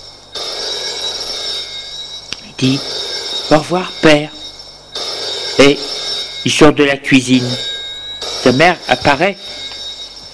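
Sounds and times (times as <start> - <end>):
telephone ringing: 0.0 - 10.3
speech: 2.6 - 4.4, 5.6 - 7.7, 8.4 - 9.6.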